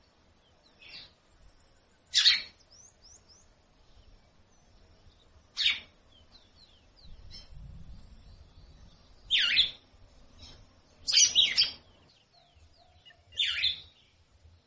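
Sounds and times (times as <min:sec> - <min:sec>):
low rumbling background noise: 0:00.0 - 0:14.6
female red-cowled cardinal giving harsh rasping calls: 0:02.0 - 0:03.3, 0:05.5 - 0:06.0, 0:09.3 - 0:09.8, 0:10.4 - 0:14.0.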